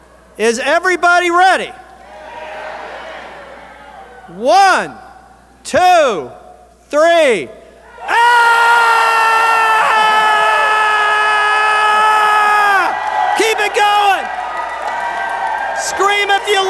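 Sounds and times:
speech: 0:00.4 - 0:01.8, 0:04.3 - 0:05.0, 0:05.6 - 0:08.6
crowd screaming as loud as it can: 0:02.0 - 0:04.3, 0:07.9 - 0:16.6.

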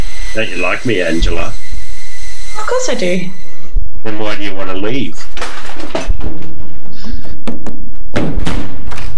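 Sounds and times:
speech: 0:00.4 - 0:01.6, 0:02.6 - 0:03.4, 0:04.0 - 0:06.4
house door shutting with a heavy thud: 0:05.2 - 0:06.8
solid thump: 0:05.3 - 0:09.1.

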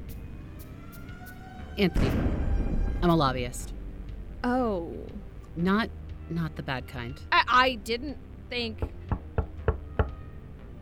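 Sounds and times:
speech: 0:01.8 - 0:02.3, 0:03.0 - 0:03.7, 0:04.4 - 0:09.0
sharp knocks on a door: 0:08.8 - 0:10.2.

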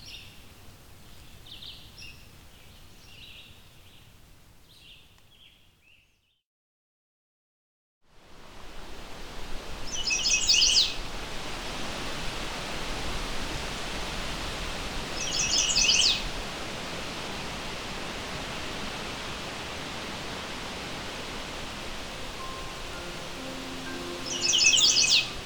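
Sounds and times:
steady rushing hiss of noise: 0:08.3 - 0:25.4
male chestnut-sided warbler singing on territory: 0:09.9 - 0:11.0, 0:15.2 - 0:16.2, 0:22.2 - 0:25.4.

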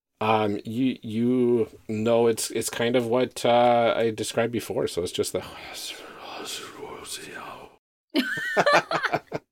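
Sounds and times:
speech: 0:00.2 - 0:07.3
eerie breathy whispering voices: 0:05.4 - 0:07.8
laughter: 0:08.2 - 0:09.4.

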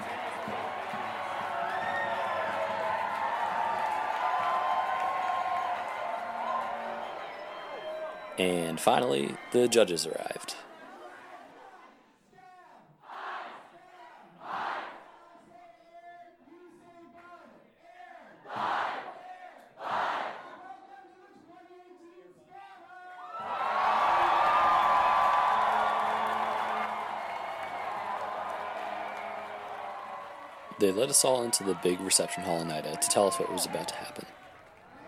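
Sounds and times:
crowd cheering and shouting: 0:00.0 - 0:11.8, 0:23.2 - 0:35.0
speech: 0:08.4 - 0:10.4, 0:31.0 - 0:34.4
crowd chanting the word pancakes: 0:13.0 - 0:15.1, 0:18.4 - 0:19.2, 0:19.8 - 0:20.6.

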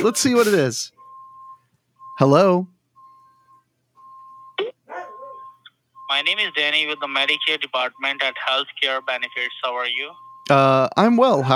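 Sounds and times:
speech: 0:00.0 - 0:01.0, 0:02.2 - 0:02.7, 0:06.1 - 0:11.5
Amazon delivery truck electronic beeping: 0:00.0 - 0:11.5
dog barking: 0:04.8 - 0:05.6.

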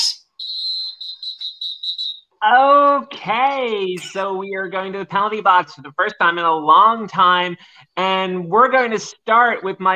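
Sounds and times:
shrill high-pitched whistle sound effect played from an app: 0:00.3 - 0:02.4
speech: 0:03.2 - 0:09.9.

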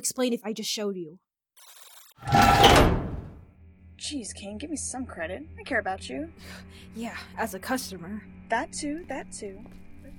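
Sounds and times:
speech: 0:00.0 - 0:03.0, 0:04.0 - 0:10.1
door pulled open with a rushing scrape and faint squeal: 0:02.2 - 0:03.4.

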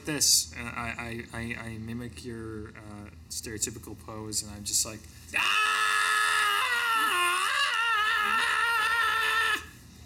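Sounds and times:
speech: 0:00.0 - 0:05.7
person screaming inside a wagon: 0:05.4 - 0:09.7.

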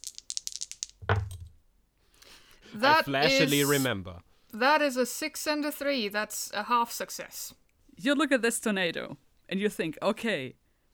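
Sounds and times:
two dice shaken in a hand: 0:00.0 - 0:01.5
speech: 0:02.7 - 0:10.6.

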